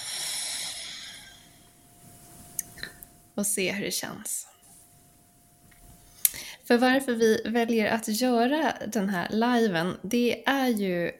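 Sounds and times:
slow soft exhale of breath: 0.0s - 1.8s, 6.2s - 6.6s
speech: 3.4s - 4.5s, 6.7s - 11.1s.

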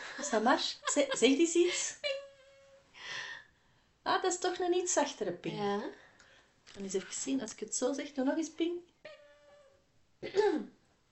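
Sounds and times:
speech: 0.2s - 2.1s, 4.0s - 6.0s, 6.7s - 8.9s, 10.2s - 10.7s
single short throaty gravelly cough: 10.2s - 10.8s.

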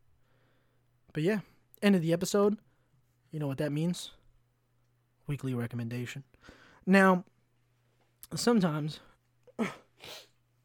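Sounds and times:
speech: 1.2s - 2.7s, 3.3s - 4.2s, 5.3s - 7.3s, 8.2s - 10.3s
person coughing: 9.5s - 10.3s
person sneezing: 9.5s - 10.4s.

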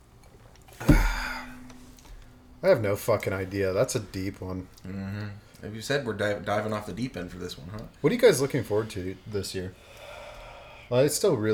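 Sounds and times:
glasses clinking in a toast: 0.8s - 2.7s
speech: 2.6s - 9.9s, 10.9s - 11.5s.

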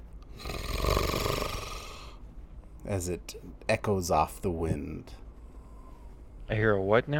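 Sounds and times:
large beast drawing a raspy growl-like inhale: 0.4s - 2.2s
speech: 2.9s - 5.2s, 6.5s - 7.1s.

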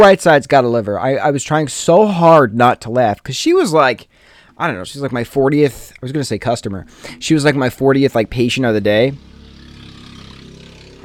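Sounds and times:
speech: 0.0s - 9.3s
loud moped engine passing by: 6.8s - 11.0s.

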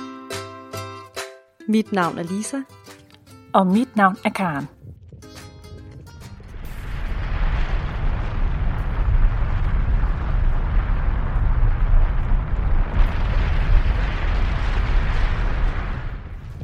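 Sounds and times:
speech: 1.6s - 2.8s, 3.6s - 4.8s
volcanic eruption roaring: 4.8s - 16.6s.

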